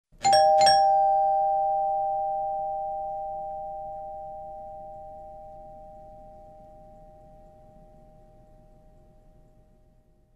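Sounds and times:
doorbell with long ringout: 0.2s - 8.8s.

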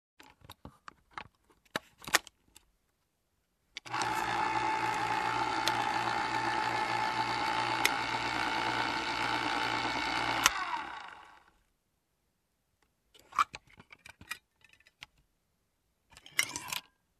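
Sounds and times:
soda machine pouring: 3.9s - 10.8s.

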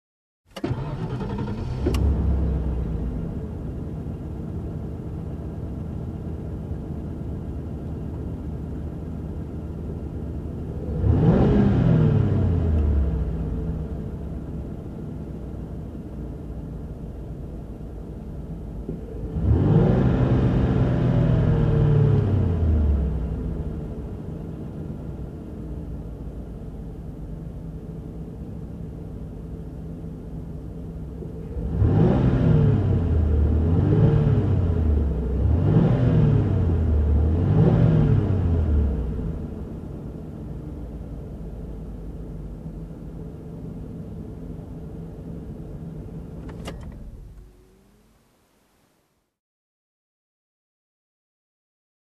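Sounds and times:
SUV engine revving: 0.6s - 3.4s, 10.8s - 14.2s, 19.2s - 24.0s, 31.4s - 40.6s.

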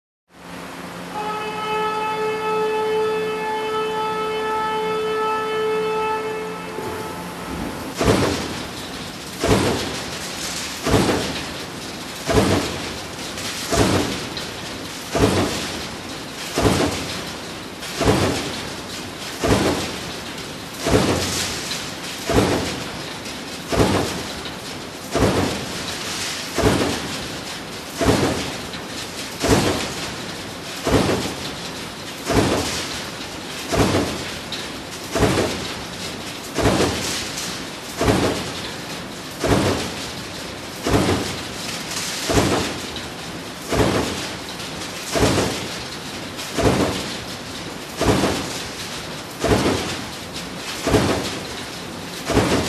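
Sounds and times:
horn of automatic crushing machine: 1.1s - 7.8s
automatic crushing machine: 7.5s - 52.6s.

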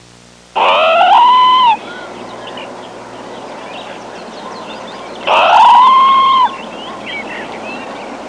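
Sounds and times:
jungle parrot squawking: 0.6s - 2.2s, 4.4s - 7.8s.

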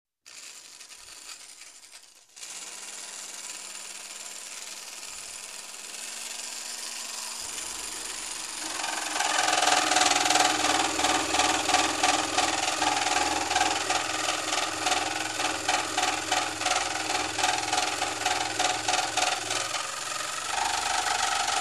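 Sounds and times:
machinery pump belt noise: 8.5s - 21.5s.

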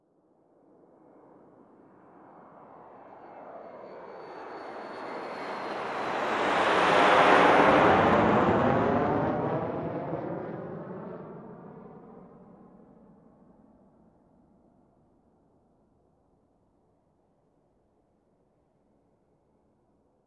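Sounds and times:
aircraft flying over: 1.0s - 14.6s.

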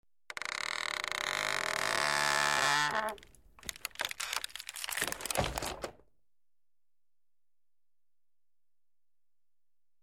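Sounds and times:
wooden door creaking open: 0.3s - 6.0s.

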